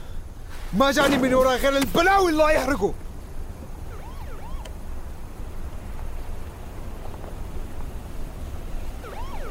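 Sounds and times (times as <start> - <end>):
engine and road noise: 0.0 - 9.5
speech: 0.7 - 3.0
siren on an approaching car wailing in short bursts: 3.8 - 4.7, 9.0 - 9.5.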